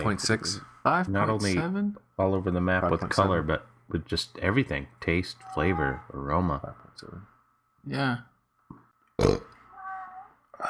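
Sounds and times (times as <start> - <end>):
speech: 0.0 - 8.3, 9.2 - 9.6
burp during a rye beer tasting: 9.2 - 9.6.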